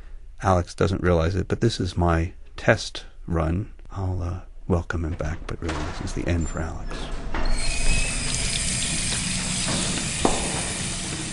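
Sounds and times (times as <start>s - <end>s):
speech: 0.4s - 7.7s
water gushing from a tap while hands are washed with liquid soap: 7.6s - 11.3s.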